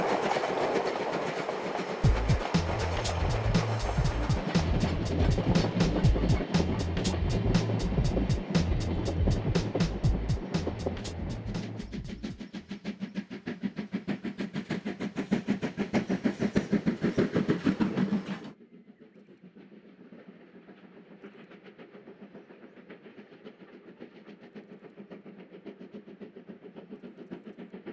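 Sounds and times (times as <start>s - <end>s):
rolling train cars clattering: 0.0s - 12.6s
C11 steam locomotive chuffing while hauling a train: 0.0s - 27.9s
hum: 2.0s - 12.6s
low rumbling: 2.0s - 12.6s.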